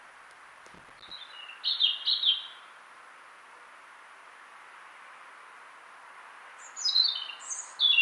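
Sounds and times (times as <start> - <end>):
faint hiss: 0.0 - 7.9
European robin song Erithacus rubecula: 1.0 - 2.9, 6.4 - 7.9.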